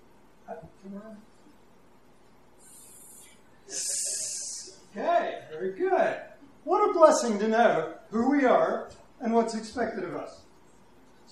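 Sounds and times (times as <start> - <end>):
speech: 0.5 - 1.4, 5.6 - 10.4
person imitating a snake hiss: 2.6 - 4.8.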